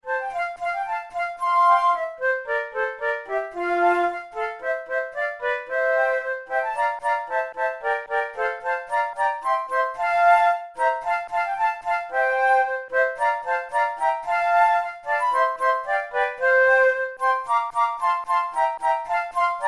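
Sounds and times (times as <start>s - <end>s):
trio with flute: 0.0s - 19.6s.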